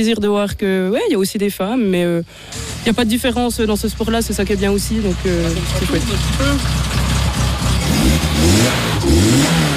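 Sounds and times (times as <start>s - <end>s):
speech: 0.0s - 7.0s
1986 slalom race car engine accelerating: 2.5s - 9.7s.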